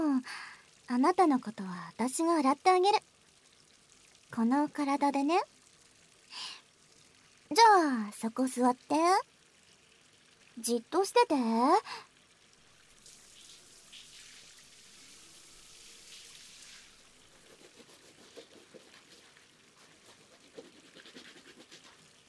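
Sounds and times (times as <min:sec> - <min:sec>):
speech: 0:00.2 - 0:03.1, 0:04.3 - 0:05.5, 0:07.5 - 0:09.3, 0:10.6 - 0:12.1
soap lathered into thick fluffy foam for washing the body: 0:13.0 - 0:22.2.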